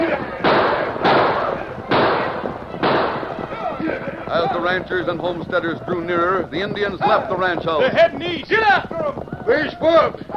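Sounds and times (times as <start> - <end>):
gunshots as ranchers and homesteaders fire on attackers: 0.0 - 4.0
speech: 4.6 - 10.3.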